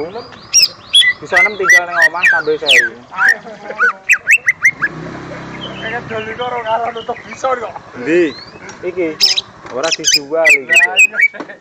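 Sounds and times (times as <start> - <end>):
greater green leafbird song of sliding whistled notes: 0.5 - 5.0, 8.2 - 11.4.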